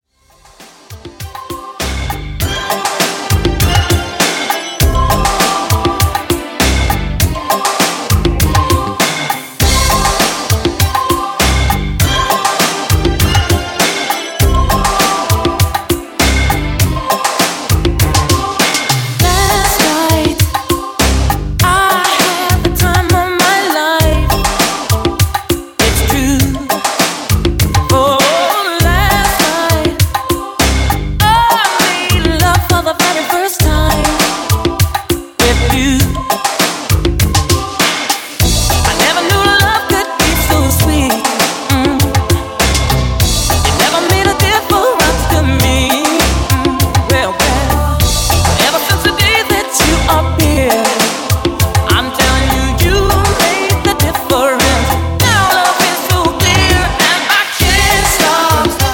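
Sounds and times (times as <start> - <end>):
80s drum machine beat at 100 BPM: 0.3 - 58.9.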